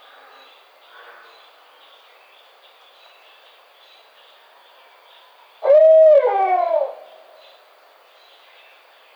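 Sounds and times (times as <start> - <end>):
barred owl giving a loud drawn-out hoot: 5.6 - 7.2.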